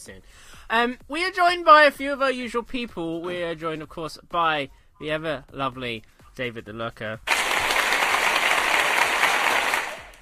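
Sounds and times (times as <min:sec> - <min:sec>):
speech: 0:00.0 - 0:07.5
dense steady applause from a crowd: 0:07.3 - 0:10.1.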